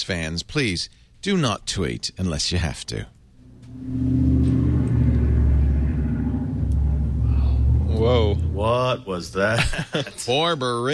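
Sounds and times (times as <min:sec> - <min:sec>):
speech: 0:00.0 - 0:03.2, 0:03.8 - 0:04.4, 0:08.6 - 0:10.9
heavy truck rumbling past: 0:03.4 - 0:09.3.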